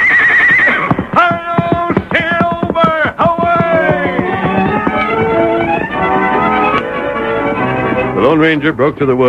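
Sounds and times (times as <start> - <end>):
big white stallion giving a quavering whinny: 0.0 - 1.1
stallion hooves clopping: 0.0 - 8.2
speech: 8.4 - 9.2.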